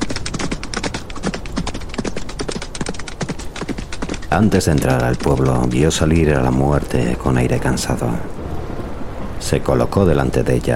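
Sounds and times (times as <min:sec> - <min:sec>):
horse hooves clip-clopping on a hard surface: 0:00.0 - 0:07.9
speech: 0:04.3 - 0:08.4, 0:09.4 - 0:10.7.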